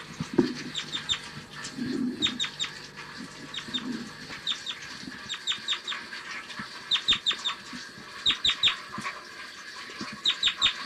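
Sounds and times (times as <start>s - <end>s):
bird flight calls: 0.7s - 1.3s, 2.0s - 2.8s, 3.4s - 6.1s, 6.8s - 7.6s, 8.2s - 8.8s, 10.2s - 10.8s.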